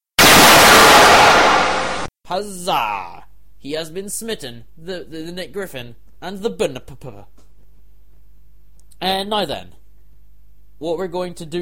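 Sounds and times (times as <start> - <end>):
laser weapon firing sound effect: 0.2 - 2.1
speech: 2.3 - 7.4, 9.0 - 9.8, 10.8 - 11.6.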